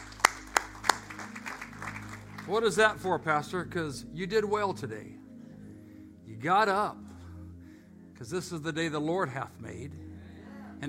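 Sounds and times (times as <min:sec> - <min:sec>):
congregation clapping hands: 0:00.0 - 0:03.6
speech: 0:02.5 - 0:05.2, 0:06.4 - 0:07.0, 0:08.2 - 0:10.0.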